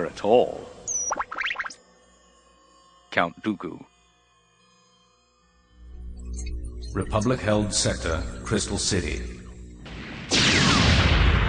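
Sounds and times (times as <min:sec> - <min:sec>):
speech: 0:00.0 - 0:00.7, 0:03.1 - 0:03.9, 0:06.9 - 0:09.4
cannon fire striking an energy shield with plasma spilling off: 0:09.8 - 0:11.4.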